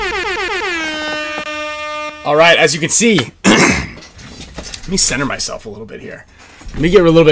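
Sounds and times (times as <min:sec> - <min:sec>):
air horn blast: 0:00.0 - 0:02.6
speech: 0:02.2 - 0:03.4, 0:04.9 - 0:07.3.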